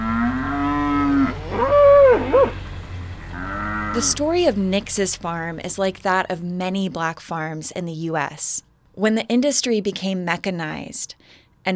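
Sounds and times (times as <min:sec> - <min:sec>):
few dozen cattle on a farm mooing loudly: 0:00.0 - 0:04.9
speech: 0:04.0 - 0:11.7.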